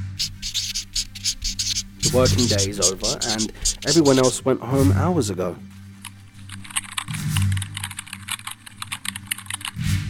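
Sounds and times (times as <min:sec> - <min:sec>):
speech: 0:00.2 - 0:00.4, 0:02.1 - 0:05.8
rapid uneven computer keyboard typing: 0:00.2 - 0:04.4, 0:06.0 - 0:09.8.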